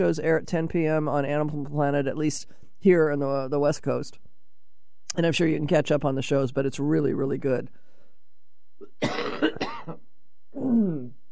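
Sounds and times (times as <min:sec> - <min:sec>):
speech: 0:00.0 - 0:04.2, 0:05.1 - 0:07.8, 0:08.8 - 0:10.0, 0:10.6 - 0:11.2
raspy gravelly throat clearing: 0:08.8 - 0:10.0, 0:10.6 - 0:11.1.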